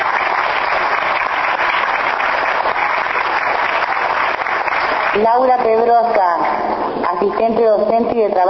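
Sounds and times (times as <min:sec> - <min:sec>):
audience applause: 0:00.0 - 0:05.2
speech: 0:05.2 - 0:08.4.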